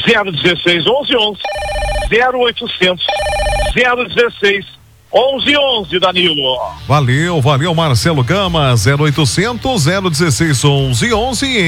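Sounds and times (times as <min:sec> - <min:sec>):
telephone ringing with incoming calls: 0:00.0 - 0:06.6
speech: 0:00.0 - 0:11.6.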